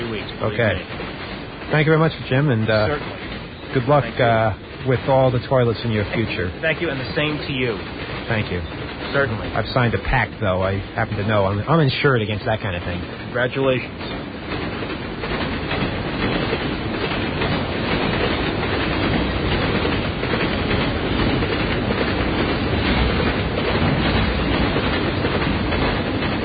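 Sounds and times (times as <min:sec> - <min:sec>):
train rumbling past on rails: 0:00.0 - 0:26.4
speech: 0:00.4 - 0:01.0, 0:01.7 - 0:14.6.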